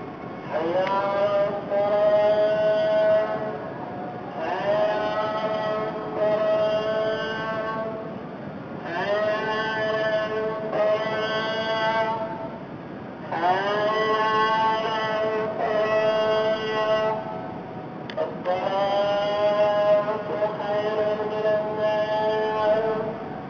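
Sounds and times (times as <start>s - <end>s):
call to prayer: 0.0s - 12.6s, 13.2s - 23.4s.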